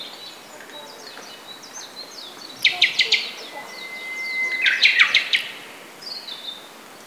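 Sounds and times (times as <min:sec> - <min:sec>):
Turdus cardis calling: 0:02.6 - 0:06.0.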